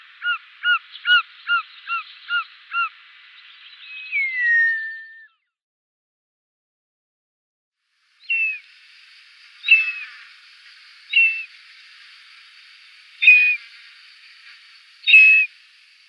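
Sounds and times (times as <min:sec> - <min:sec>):
short-toed snake eagle whistling calls: 0:00.0 - 0:02.9, 0:03.8 - 0:05.4, 0:08.2 - 0:08.6, 0:09.6 - 0:10.3, 0:11.1 - 0:11.5, 0:13.2 - 0:13.8, 0:15.0 - 0:15.6.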